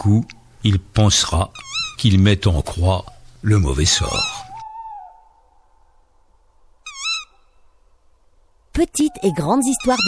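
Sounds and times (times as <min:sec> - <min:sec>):
speech: 0:00.0 - 0:04.4, 0:08.8 - 0:10.0
tawny owl brief quavering shrill cry: 0:01.5 - 0:02.0, 0:03.8 - 0:05.8, 0:06.8 - 0:07.8, 0:08.9 - 0:10.0
tawny owl hooting at night: 0:01.5 - 0:02.1, 0:03.1 - 0:06.0, 0:06.8 - 0:07.8, 0:08.8 - 0:10.0.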